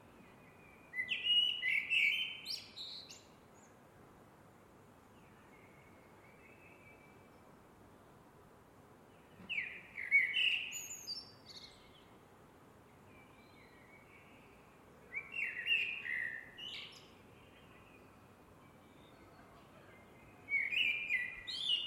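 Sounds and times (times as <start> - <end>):
Eurasian blackbird singing: 0.7 - 3.4, 9.2 - 12.1, 13.1 - 21.8.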